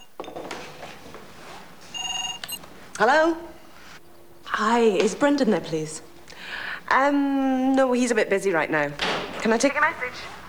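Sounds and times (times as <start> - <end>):
telephone ringing at home in faint electronic bursts: 0.0 - 7.0
quiet noise: 0.0 - 10.4
speech: 3.0 - 3.5, 4.6 - 6.1, 6.9 - 10.4.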